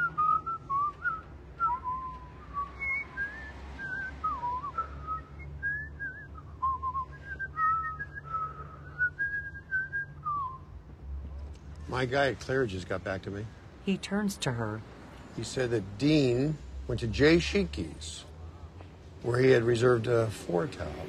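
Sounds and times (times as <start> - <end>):
person whistling a wandering tuneful melody: 0.0 - 10.7
speech: 11.9 - 18.3, 19.2 - 21.0.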